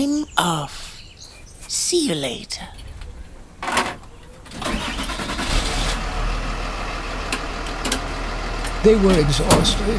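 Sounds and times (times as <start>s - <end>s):
speech: 0.0s - 0.8s, 1.7s - 2.8s, 8.8s - 9.9s
car engine starting: 3.6s - 9.9s.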